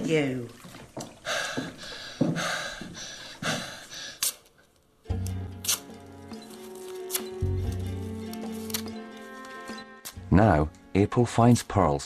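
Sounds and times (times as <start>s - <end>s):
speech: 0.1s - 0.6s, 10.4s - 12.0s
person gasping for breath: 1.2s - 4.2s
music: 5.0s - 12.0s.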